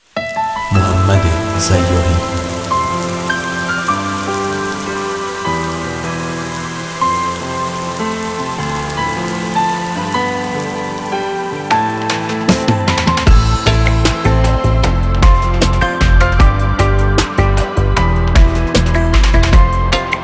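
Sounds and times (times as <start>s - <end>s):
light steady drizzle pattering: 0.0s - 14.0s
slow sustained instrumental music with shifting chords: 0.1s - 20.2s
speech: 1.6s - 2.5s.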